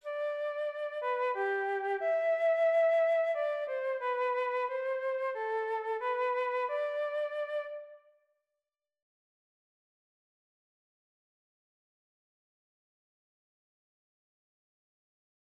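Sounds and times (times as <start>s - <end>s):
flute melody motif: 0.0s - 8.1s.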